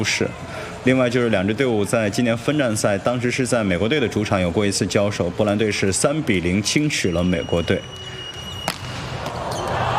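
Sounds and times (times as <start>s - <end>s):
speech: 0.0s - 8.1s
volleyball serve scoring an ace: 8.4s - 9.8s.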